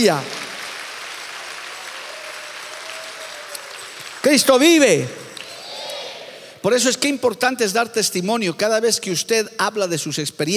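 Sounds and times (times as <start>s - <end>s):
speech: 0.0s - 0.4s, 4.3s - 5.2s, 6.6s - 10.5s
audience applauding to God: 0.0s - 6.0s.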